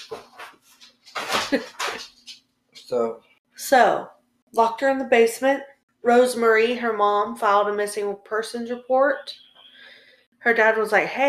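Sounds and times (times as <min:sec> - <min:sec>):
dog scratching and walking around: 0:00.0 - 0:02.9
speech: 0:01.5 - 0:02.1, 0:02.9 - 0:09.4, 0:10.4 - 0:11.2.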